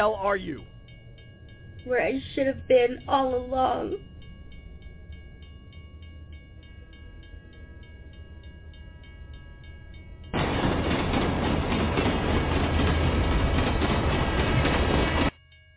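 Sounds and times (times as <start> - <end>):
speech: 0.0 - 0.8, 1.8 - 4.1
train rumbling: 0.0 - 15.4.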